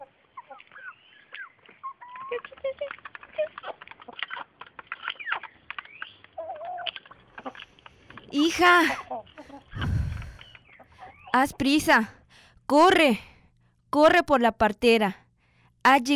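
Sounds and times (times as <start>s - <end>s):
chickens clucking: 0.0s - 11.4s
speech: 8.3s - 9.1s, 11.4s - 13.3s, 14.0s - 15.2s, 15.8s - 16.1s.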